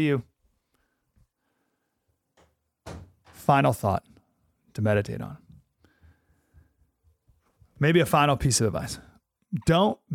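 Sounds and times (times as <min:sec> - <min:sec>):
speech: 0:00.0 - 0:00.3, 0:03.5 - 0:04.1, 0:04.8 - 0:05.4, 0:07.8 - 0:10.1
door shutting with a firm thud: 0:02.4 - 0:03.5.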